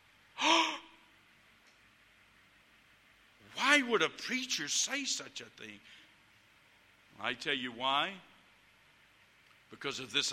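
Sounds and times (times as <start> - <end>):
listener gasping: 0.4 - 1.0
speech: 3.8 - 6.0, 7.2 - 8.3, 9.7 - 10.3.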